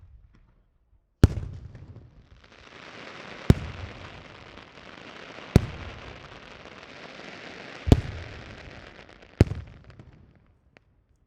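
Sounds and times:
strong firework blast with sparkle in Malta: 1.3s - 10.3s.

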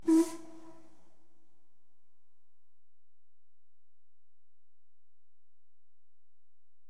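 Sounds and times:
LMS steam engine whistle: 0.0s - 1.0s.

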